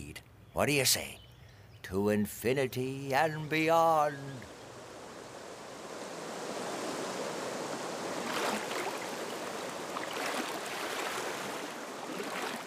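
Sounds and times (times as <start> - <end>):
speech: 0.6 - 1.2, 1.9 - 4.5
cold river water rushing: 4.3 - 12.6.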